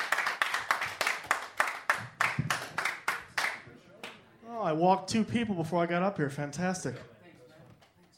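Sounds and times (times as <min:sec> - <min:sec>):
small audience clapping for a comedian: 0:00.0 - 0:04.2
speech: 0:04.7 - 0:07.2.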